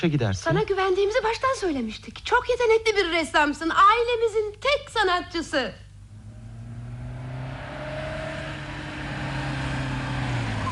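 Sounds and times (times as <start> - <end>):
speech: 0.0 - 5.8
car engine humming as the car pulls up: 6.0 - 10.7.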